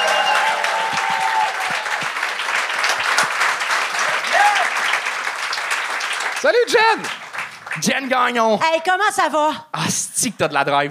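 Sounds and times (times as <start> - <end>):
audience applauding and cheering at a live show: 0.0 - 8.4
speech: 6.4 - 7.2, 7.8 - 10.8.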